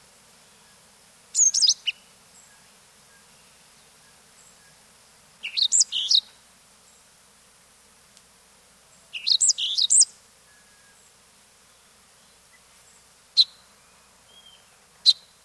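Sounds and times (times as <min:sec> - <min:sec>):
background hiss: 0:00.0 - 0:15.4
Yellow-throated euphonia chipping calls in South America: 0:05.4 - 0:06.3, 0:09.2 - 0:10.1.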